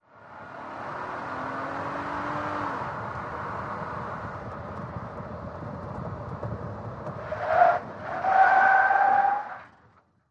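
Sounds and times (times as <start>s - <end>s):
SUV truck accelerating: 0.1s - 9.3s
SUV truck tires skidding: 3.8s - 10.0s.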